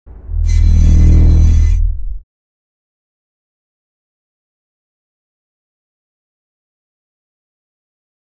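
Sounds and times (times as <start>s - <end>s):
heavy synth for body scan: 0.1s - 2.2s.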